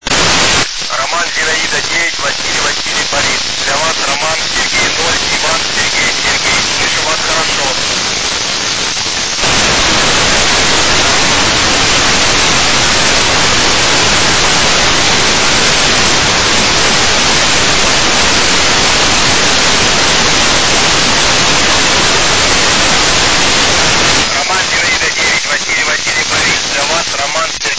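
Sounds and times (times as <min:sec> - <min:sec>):
FM radio transmission on 145.800 MHz: 0:00.0 - 0:27.7.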